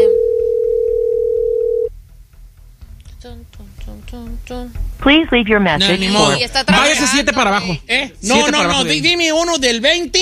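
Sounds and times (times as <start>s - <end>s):
telephone ringing tone on an outgoing call: 0.0s - 1.9s
faint low hum: 0.0s - 10.2s
speech: 4.1s - 10.2s.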